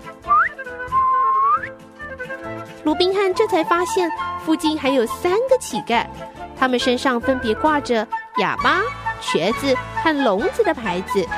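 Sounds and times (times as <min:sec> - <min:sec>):
man whistling: 0:00.0 - 0:02.2
speech: 0:02.8 - 0:11.3.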